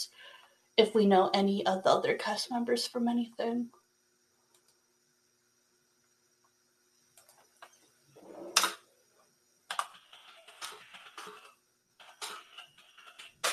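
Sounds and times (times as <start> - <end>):
speech: 0.8 - 3.8
computer keyboard typing: 9.7 - 13.5.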